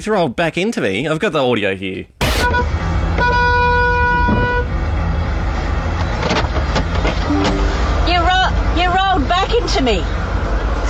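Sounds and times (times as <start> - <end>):
speech: 0.0 - 3.4, 9.5 - 10.2
car horn sustained honk: 2.2 - 4.7, 7.2 - 8.2
constant rumble of engine and road noise: 2.2 - 10.8.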